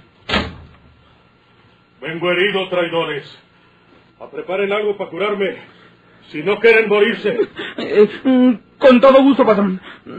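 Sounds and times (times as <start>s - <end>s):
door pushed open with a sharp thump: 0.2s - 0.8s
speech: 2.0s - 3.4s, 4.2s - 10.1s.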